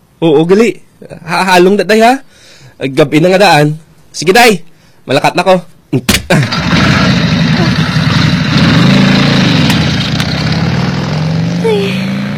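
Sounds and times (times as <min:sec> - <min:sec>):
speech: 0:00.2 - 0:07.1, 0:11.6 - 0:12.1
tricycle's small motor running and driving off at night: 0:06.4 - 0:12.3.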